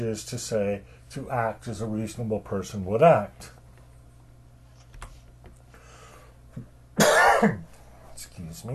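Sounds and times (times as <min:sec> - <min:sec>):
speech: 0:00.0 - 0:03.6, 0:07.4 - 0:08.7
single loud harsh cough: 0:07.0 - 0:07.7.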